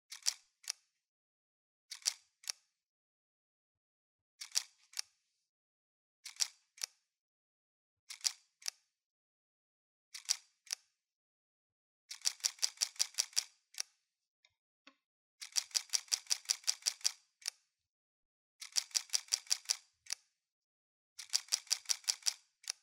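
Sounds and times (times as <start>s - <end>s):
Nikon Df camera: 0.1s - 0.8s, 1.9s - 2.6s, 4.4s - 5.0s, 6.2s - 6.9s, 8.1s - 8.8s, 10.1s - 10.8s, 12.1s - 13.9s, 15.4s - 17.6s, 18.6s - 20.2s, 21.2s - 22.8s.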